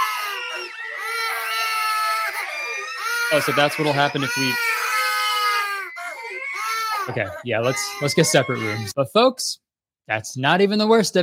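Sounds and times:
several young children screaming and crying: 0:00.0 - 0:09.0
speech: 0:03.3 - 0:04.7, 0:07.1 - 0:11.2.

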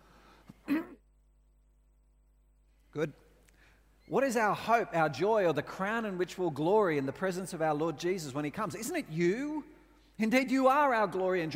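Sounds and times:
short throaty cough from a speaker reading scripture: 0:00.6 - 0:01.0
speech: 0:03.0 - 0:03.3, 0:04.1 - 0:11.5.

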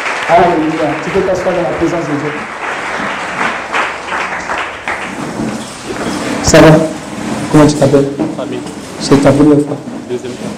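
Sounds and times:
congregation cheering in church: 0:00.0 - 0:06.5
church congregation applauding: 0:00.0 - 0:07.5
speech: 0:00.3 - 0:02.7, 0:06.5 - 0:06.9, 0:07.5 - 0:10.5.

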